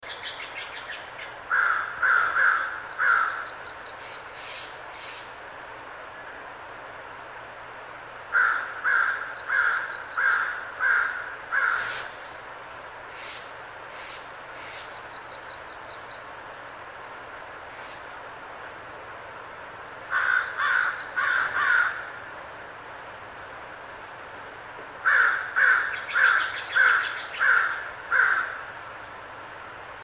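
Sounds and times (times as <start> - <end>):
crow calls in a forest: 1.5 - 3.7, 8.3 - 12.2, 20.1 - 22.2, 25.0 - 28.7.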